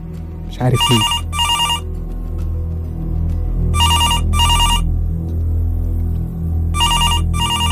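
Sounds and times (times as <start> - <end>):
steady low hum: 0.0 - 7.7
speech: 0.5 - 1.2
reception desk telephone ringing with a bright electronic trill: 0.8 - 1.8, 3.8 - 4.8, 6.8 - 7.7.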